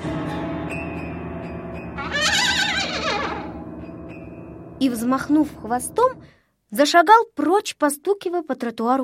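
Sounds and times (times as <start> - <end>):
donkey braying: 2.0 - 3.6
speech: 4.8 - 9.0.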